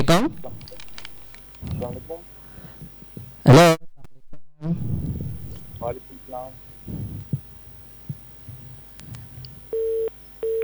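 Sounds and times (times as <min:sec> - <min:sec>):
speech: 0:00.0 - 0:00.6
faint low noise: 0:00.0 - 0:10.6
phone busy tone after a call is disconnected: 0:09.6 - 0:10.6.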